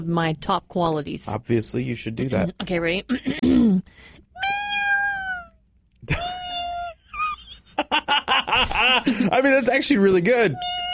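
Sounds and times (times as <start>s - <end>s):
speech: 0.0s - 4.6s, 8.8s - 10.9s
person imitating kitten meows: 4.4s - 7.0s, 10.5s - 10.9s.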